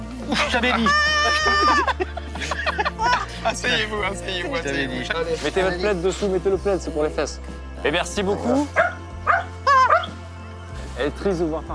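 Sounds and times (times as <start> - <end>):
laughter: 0.0 - 5.8
speech: 0.3 - 2.8, 3.4 - 8.9, 11.0 - 11.7
dog barking: 8.7 - 10.2.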